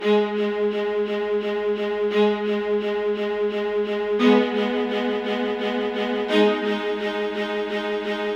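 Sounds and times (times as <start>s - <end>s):
A-flat minor suspense-building violin loop: 0.0s - 8.3s.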